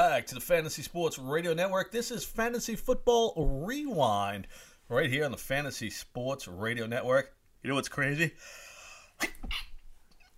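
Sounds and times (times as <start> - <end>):
speech: 0.2 - 9.7
single forceful sneeze: 9.2 - 9.8.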